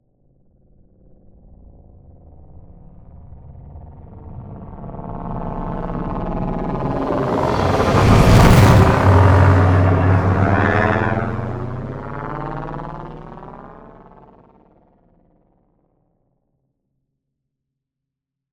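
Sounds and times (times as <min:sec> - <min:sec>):
spaceship passing by with speed variations: 0:05.1 - 0:14.2.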